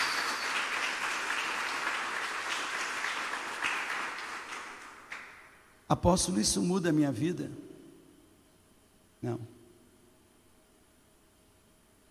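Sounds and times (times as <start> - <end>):
crowd applauding vigorously: 0.0 - 5.5
speech: 5.9 - 7.7, 9.2 - 9.6.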